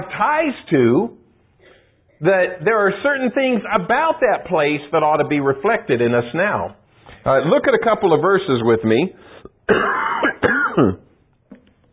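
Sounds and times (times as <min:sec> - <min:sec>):
speech: 0:00.2 - 0:01.2, 0:02.2 - 0:11.0
person coughing: 0:09.7 - 0:11.2
person clearing throat: 0:09.7 - 0:11.6.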